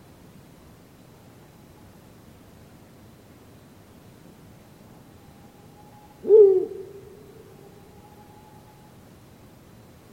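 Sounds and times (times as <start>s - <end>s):
quiet background hiss: 0.0s - 10.1s
Ural owl short low hoot: 5.1s - 9.0s.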